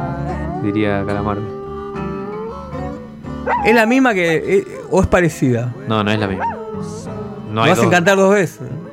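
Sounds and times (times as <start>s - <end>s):
speech: 0.6s - 1.6s, 3.4s - 7.0s, 7.6s - 8.7s
dog howling mournfully: 3.5s - 3.9s, 6.4s - 7.1s.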